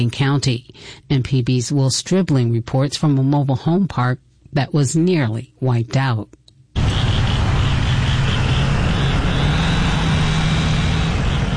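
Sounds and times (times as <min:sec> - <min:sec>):
speech: 0:00.0 - 0:06.4
truck engines idling and running during tornado cleanup: 0:06.8 - 0:11.5.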